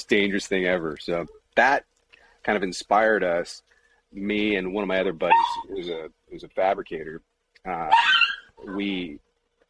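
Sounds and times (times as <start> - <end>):
speech: 0.0 - 9.2
dog barking: 5.3 - 5.7, 7.9 - 8.5.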